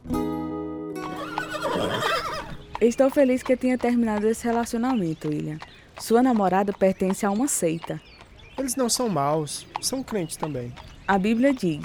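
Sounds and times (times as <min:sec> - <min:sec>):
horse whinnying and neighing during a horseback ride: 0:01.0 - 0:02.6
speech: 0:01.8 - 0:11.8.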